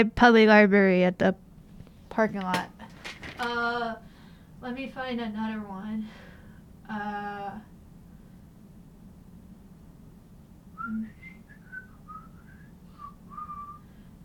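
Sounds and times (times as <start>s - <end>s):
speech: 0.0s - 1.4s, 2.1s - 2.8s, 3.4s - 6.3s, 6.9s - 7.7s, 10.8s - 11.2s
steady outdoor hiss: 1.3s - 14.2s
person whistling a short wavering tune: 10.8s - 13.9s.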